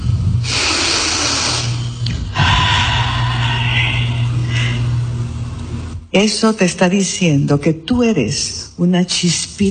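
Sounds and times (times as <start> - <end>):
deep breathing in and out: 0.0 - 5.4
low steady hum: 0.0 - 9.6
speech: 6.2 - 9.6.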